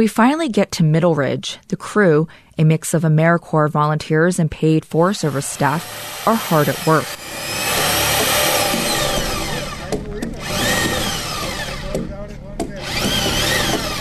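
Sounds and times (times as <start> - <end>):
speech: 0.0 - 7.6
power drill boring holes into spruce logs: 5.2 - 12.1, 12.7 - 13.9.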